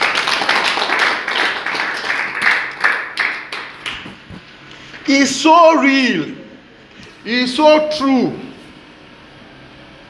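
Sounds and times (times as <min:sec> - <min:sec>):
crowd of people clapping: 0:00.0 - 0:04.4
speech: 0:05.1 - 0:06.4, 0:07.2 - 0:08.4.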